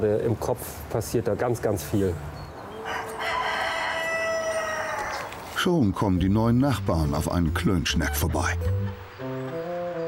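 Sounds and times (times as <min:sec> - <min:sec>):
speech: 0:00.0 - 0:03.0, 0:05.6 - 0:09.0
rooster crowing: 0:02.7 - 0:05.4.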